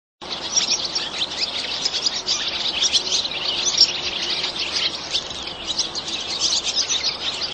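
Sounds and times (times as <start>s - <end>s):
swallow calling: 0.2s - 7.5s.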